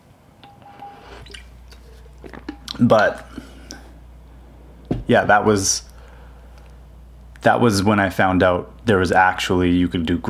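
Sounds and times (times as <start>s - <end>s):
low steady hum: 0.0s - 10.2s
person sipping water: 1.0s - 5.1s
speech: 2.8s - 3.4s, 5.1s - 5.9s, 7.4s - 10.2s.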